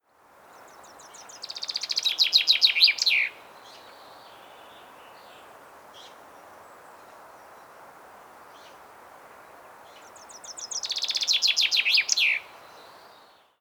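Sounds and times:
common chaffinch song: 0:00.5 - 0:06.2, 0:09.9 - 0:13.5.

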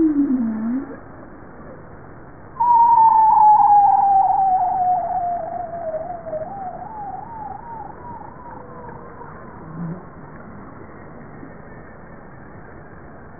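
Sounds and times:
bowhead whale calling: 0:00.0 - 0:01.0, 0:02.6 - 0:10.4
low background noise: 0:00.0 - 0:13.3.

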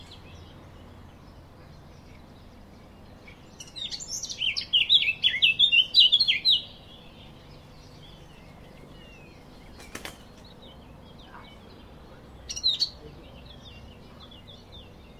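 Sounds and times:
Eurasian blackcap song: 0:00.0 - 0:15.1.

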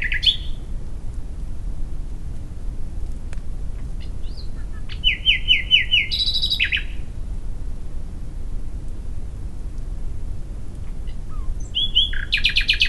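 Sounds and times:
Common nightingale Luscinia megarhynchos singing: 0:00.0 - 0:00.7, 0:04.0 - 0:07.2, 0:10.8 - 0:12.8
low background noise: 0:00.0 - 0:12.8.

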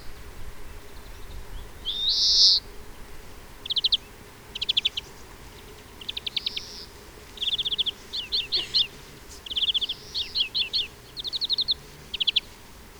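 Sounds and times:
European greenfinch Chloris chloris chattering with wheezy rising notes: 0:01.9 - 0:02.7, 0:03.6 - 0:12.9.

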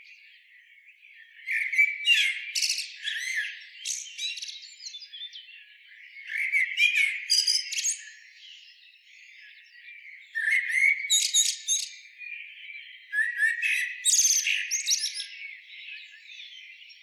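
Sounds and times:
common blackbird Turdus merula song: 0:00.0 - 0:17.0.

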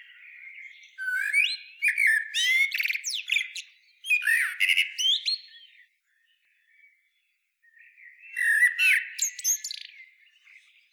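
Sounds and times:
common blackbird Turdus merula singing: 0:00.0 - 0:05.8, 0:07.8 - 0:10.9.

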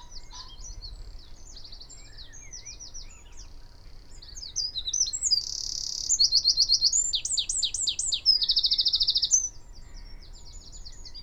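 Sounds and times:
Eurasian wren Troglodytes troglodytes song: 0:00.0 - 0:03.4, 0:04.2 - 0:09.6.

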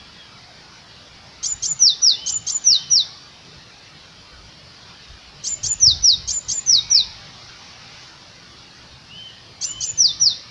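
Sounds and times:
Eurasian blue tit Cyanistes caeruleus singing: 0:01.4 - 0:03.3, 0:05.4 - 0:07.4, 0:09.0 - 0:10.4.

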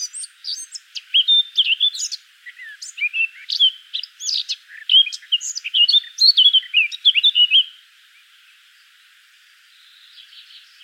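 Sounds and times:
Eurasian blackcap Sylvia atricapilla singing: 0:00.0 - 0:07.7.

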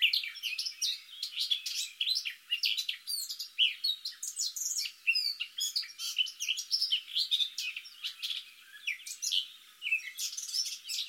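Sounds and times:
Eurasian blackcap Sylvia atricapilla song: 0:00.0 - 0:11.0.

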